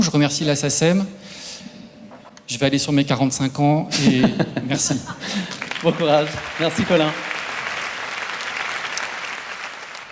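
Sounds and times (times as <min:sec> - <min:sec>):
speech: 0:00.0 - 0:01.5, 0:02.5 - 0:07.3
laughter: 0:03.9 - 0:06.4
crowd applauding: 0:05.3 - 0:10.0.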